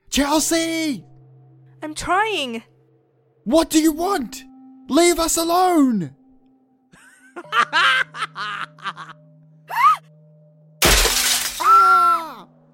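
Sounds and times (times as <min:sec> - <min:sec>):
speech: 0:00.2 - 0:01.1, 0:01.8 - 0:02.7, 0:03.4 - 0:06.2, 0:07.4 - 0:10.1
car window glass smashing: 0:10.8 - 0:11.7.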